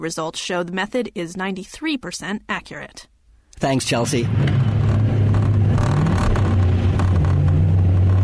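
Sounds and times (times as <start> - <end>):
speech: 0.0 - 4.7
car engine hum inside a moving car: 3.6 - 8.2
road rumble: 3.6 - 8.2.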